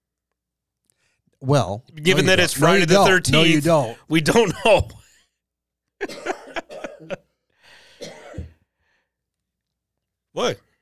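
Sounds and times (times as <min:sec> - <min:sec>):
speech: 0:01.4 - 0:05.0, 0:06.0 - 0:06.3, 0:10.4 - 0:10.6
person coughing harshly: 0:06.0 - 0:07.2, 0:07.9 - 0:08.6
raspy wheezing cough: 0:06.0 - 0:08.7.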